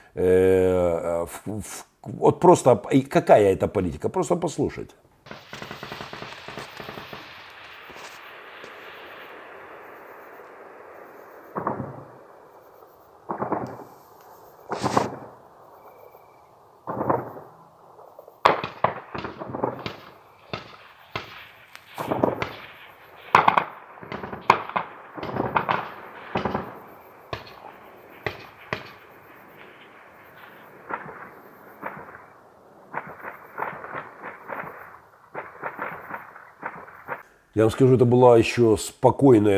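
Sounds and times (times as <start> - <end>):
speech: 0.2 - 0.6, 1.2 - 5.1, 37.6 - 39.5
small-arms gunfire at night: 5.2 - 12.6, 13.2 - 15.4, 16.8 - 17.6, 18.4 - 37.2.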